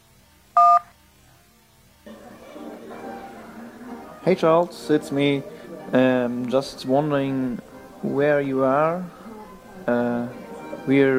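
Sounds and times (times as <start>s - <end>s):
telephone keypad touch-tone beep: 0.6s - 0.9s
speech: 4.2s - 9.2s, 9.8s - 11.1s.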